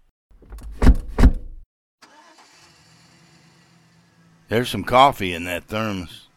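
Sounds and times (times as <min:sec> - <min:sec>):
jeep engine cranking: 0:02.0 - 0:03.2
speech: 0:04.5 - 0:06.3.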